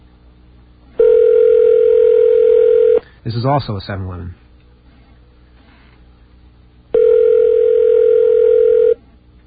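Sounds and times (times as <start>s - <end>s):
telephone ringing with an electronic tone: 1.0s - 3.0s, 6.9s - 9.0s
speech: 3.3s - 4.4s.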